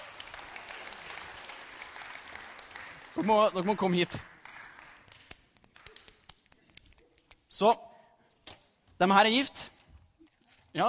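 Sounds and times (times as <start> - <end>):
room full of people clapping: 0.0 - 6.2
speech: 3.2 - 4.3, 7.6 - 7.9, 9.0 - 9.7.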